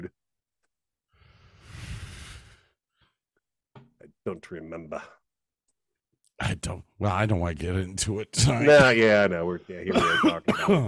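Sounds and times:
speech: 4.2s - 5.2s, 6.4s - 10.8s
smoker clearing throat at a microphone: 9.9s - 10.8s
smoker coughing at a microphone: 9.9s - 10.8s.

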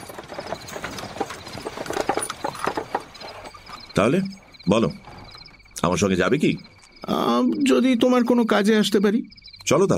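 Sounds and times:
horse-drawn carriage rumbling: 0.0s - 5.8s
hooves of a horse-drawn carriage clip-clopping along a foggy lane: 0.0s - 6.1s
speech: 4.0s - 5.1s, 5.8s - 9.9s.

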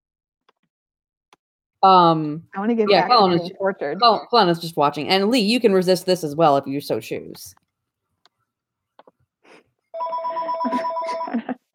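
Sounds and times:
speech: 1.8s - 7.6s
house telephone ringing: 10.0s - 11.4s.

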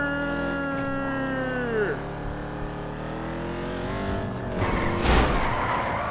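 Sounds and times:
video game car engine revving: 0.0s - 6.1s
video game car tires burning rubber: 4.5s - 6.1s.

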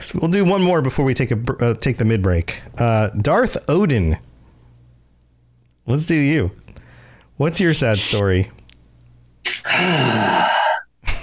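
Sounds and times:
speech: 0.0s - 4.3s, 5.9s - 6.6s, 7.4s - 8.6s, 9.6s - 10.6s
long groaning voiced exhale: 9.5s - 10.8s
person breathing deeply: 9.5s - 10.8s.

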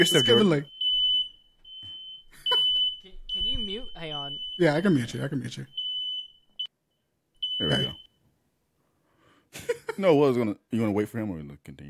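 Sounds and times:
speech: 0.0s - 0.7s, 4.0s - 5.8s, 7.6s - 8.0s, 9.5s - 11.8s
smoke alarm beeping: 0.0s - 8.2s.

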